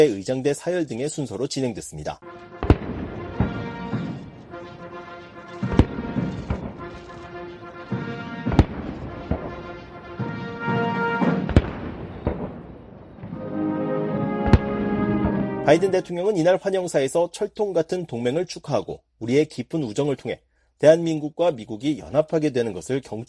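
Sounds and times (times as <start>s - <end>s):
speech: 0.0s - 2.5s, 15.7s - 23.2s
brass band music at a state welcome ceremony: 2.2s - 12.4s, 13.2s - 16.4s
cannon shots of a 21-gun salute at a state welcome ceremony: 2.4s - 13.4s, 14.3s - 16.0s.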